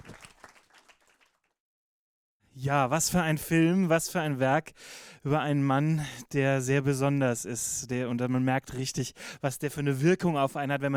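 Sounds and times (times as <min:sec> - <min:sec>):
audience applause: 0:00.0 - 0:01.5
speech: 0:02.6 - 0:10.9.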